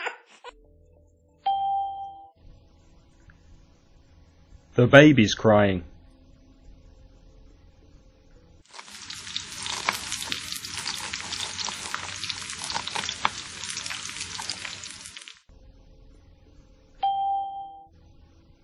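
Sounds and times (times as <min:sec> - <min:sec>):
bright ringing ding: 0:01.5 - 0:02.3, 0:17.1 - 0:17.9
speech: 0:04.7 - 0:05.9
food sizzling and frying in a pan: 0:08.7 - 0:15.5.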